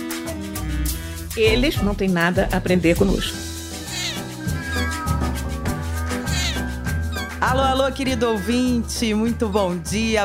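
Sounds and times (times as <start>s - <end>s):
steady music: 0.0s - 10.2s
speech: 1.4s - 3.5s, 7.4s - 10.2s
domestic cat meowing while pushing against the microphone: 3.8s - 7.4s.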